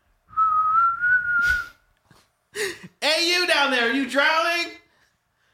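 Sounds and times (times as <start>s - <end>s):
person whistling through cupped hands: 0.3s - 1.9s
speech: 3.7s - 4.7s.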